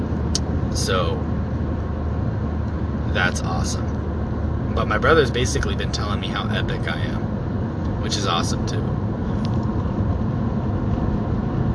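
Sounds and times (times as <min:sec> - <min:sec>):
car driving with engine and road noise: 0:00.0 - 0:11.7
speech: 0:00.8 - 0:01.4, 0:03.1 - 0:03.9, 0:04.8 - 0:07.2, 0:08.1 - 0:09.0.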